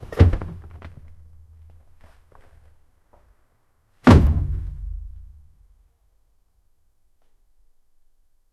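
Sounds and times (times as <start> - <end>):
thunk: 4.0 - 5.0.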